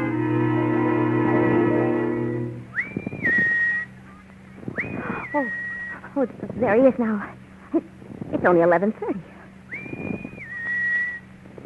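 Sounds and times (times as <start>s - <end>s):
low hum: 0.0s - 11.6s
person whistling two sustained notes: 2.7s - 3.9s, 4.7s - 6.0s, 9.7s - 11.2s
speech: 6.2s - 9.3s.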